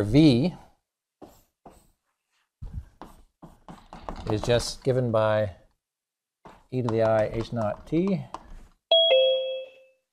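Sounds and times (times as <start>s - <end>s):
speech: 0.0s - 0.6s, 4.3s - 5.6s, 6.7s - 8.4s
doorbell chiming a two-note ding-dong: 8.9s - 10.0s.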